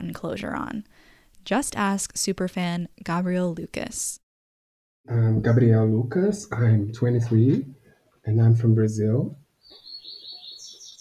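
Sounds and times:
speech: 0.2s - 4.2s, 5.0s - 9.4s
birds chirping on an island: 9.6s - 10.9s.

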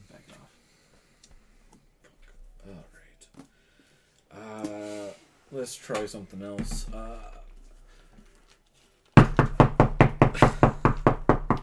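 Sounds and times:
speech: 5.6s - 7.4s
knocking on a door: 9.2s - 11.6s.

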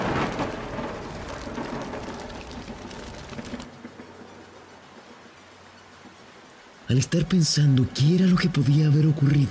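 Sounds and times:
deep thunder rumble: 0.0s - 5.6s
heavy rain pouring: 0.0s - 9.4s
speech: 6.9s - 9.4s.

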